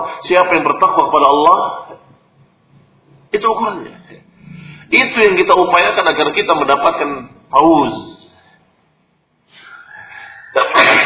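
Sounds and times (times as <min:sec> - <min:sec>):
speech: 0:00.0 - 0:02.0, 0:03.3 - 0:04.2, 0:04.9 - 0:08.2
rising drawn-in breath before a sneeze: 0:04.3 - 0:04.9, 0:09.5 - 0:10.5
sneeze: 0:10.6 - 0:11.0.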